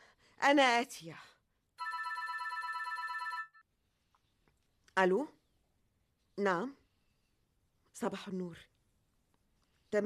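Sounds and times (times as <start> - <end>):
speech: 0.4 - 1.3, 5.0 - 5.4, 6.4 - 6.8, 8.0 - 8.7
telephone ringing with a trilling bell: 1.8 - 3.6.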